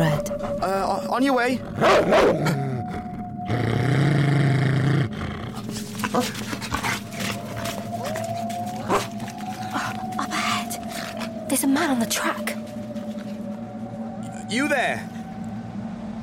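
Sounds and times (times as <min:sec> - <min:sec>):
speech: 0:00.0 - 0:02.7, 0:03.5 - 0:04.2, 0:06.1 - 0:06.8, 0:11.6 - 0:12.6, 0:14.5 - 0:15.1
white hound with red ears growling low: 0:00.0 - 0:13.5
white hound with red ears howling: 0:00.0 - 0:15.8
outdoor noise: 0:00.0 - 0:16.2
rustling in brush: 0:05.6 - 0:11.3.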